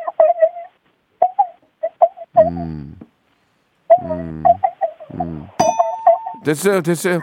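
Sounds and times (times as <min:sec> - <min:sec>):
person imitating a puppy dreaming with squeaky whines: 0:00.3 - 0:03.1, 0:03.9 - 0:05.6
speech: 0:06.5 - 0:07.2.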